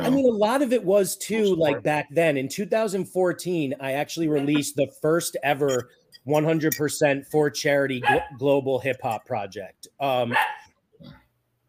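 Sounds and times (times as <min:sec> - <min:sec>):
speech: 0:00.1 - 0:11.2
dog barking: 0:08.0 - 0:08.4, 0:10.3 - 0:10.7.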